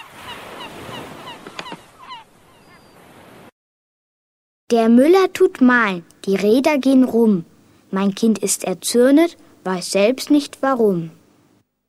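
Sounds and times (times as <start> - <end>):
seagulls crying: 0.0 - 3.2
speech: 4.7 - 11.2.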